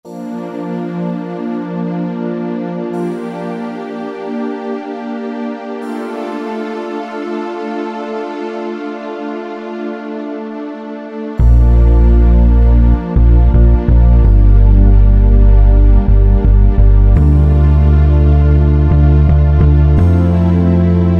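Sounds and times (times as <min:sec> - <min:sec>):
synth pad: 0:00.1 - 0:21.1
phat synth bass: 0:11.4 - 0:21.1.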